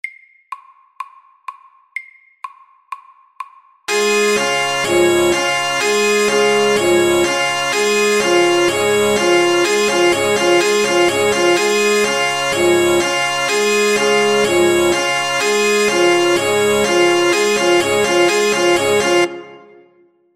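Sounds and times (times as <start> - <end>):
alarm: 3.9 - 19.8.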